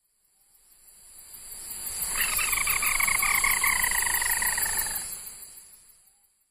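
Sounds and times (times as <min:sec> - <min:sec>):
ruddy-breasted crake on Ishigaki: 0:02.1 - 0:05.0.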